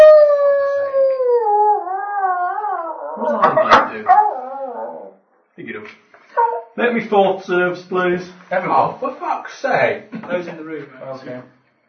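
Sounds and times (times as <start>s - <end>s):
beastly howl with a strong harmonic tone: 0.0s - 5.2s
speech: 3.5s - 4.3s, 5.6s - 11.6s.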